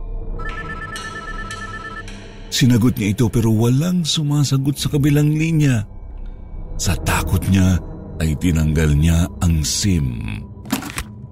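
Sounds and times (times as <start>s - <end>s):
cellphone ringing with a steady electronic tone: 0.4s - 2.1s
speech: 2.5s - 6.0s, 6.8s - 10.5s.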